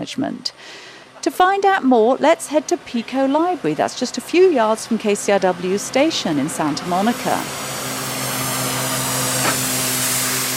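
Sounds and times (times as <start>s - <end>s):
speech: 0.0s - 7.7s
low constant hum: 0.0s - 10.5s
spray paint hissing as a traffic painter marks a sign onto a walkway: 6.9s - 10.5s.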